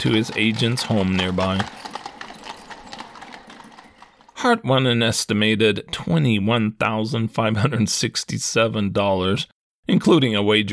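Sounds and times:
speech: 0.0 - 1.9, 4.4 - 10.7
horse hooves clip-clopping at a trot: 0.0 - 4.4.

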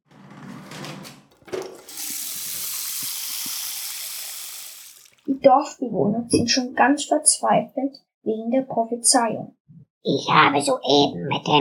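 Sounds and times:
well water sloshing and splashing: 1.3 - 5.4
speech: 5.4 - 11.5.

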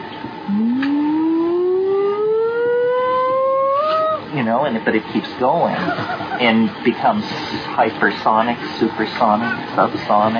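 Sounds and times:
speech: 0.5 - 0.9, 4.4 - 10.3
loud synthesized tone gliding upward in pitch: 0.5 - 4.2
laughter: 5.7 - 6.6.

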